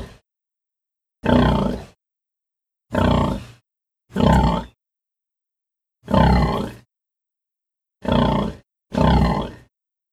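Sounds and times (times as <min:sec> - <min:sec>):
pig giving harsh throaty grunts: 0:01.2 - 0:02.0, 0:02.9 - 0:03.6, 0:04.2 - 0:04.8, 0:06.1 - 0:06.8, 0:08.0 - 0:09.7.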